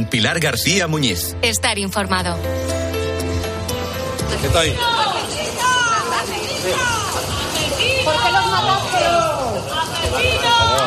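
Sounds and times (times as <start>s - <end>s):
speech: 0.0s - 3.0s, 4.3s - 5.1s, 6.6s - 7.0s
crowd shouting and jeering at arriving detainees at the courts: 4.6s - 10.8s.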